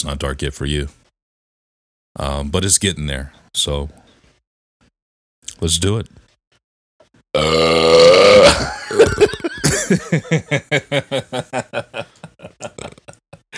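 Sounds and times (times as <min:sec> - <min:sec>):
speech: 0:00.0 - 0:01.0, 0:02.2 - 0:04.0, 0:05.6 - 0:06.2, 0:07.4 - 0:09.3, 0:09.9 - 0:12.1
loud drawn-out belch: 0:07.4 - 0:09.3, 0:12.7 - 0:13.1
rhythmic pulsing laughter: 0:08.7 - 0:13.5.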